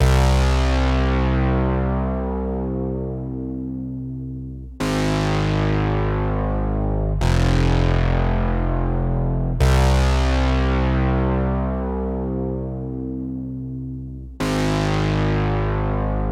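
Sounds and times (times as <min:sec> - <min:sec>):
MemoryMoog synth bass loop in C minor: 0:00.0 - 0:16.3.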